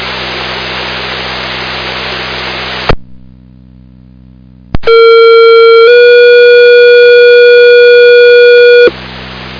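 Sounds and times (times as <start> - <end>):
radio static hissing: 4.8 - 8.9.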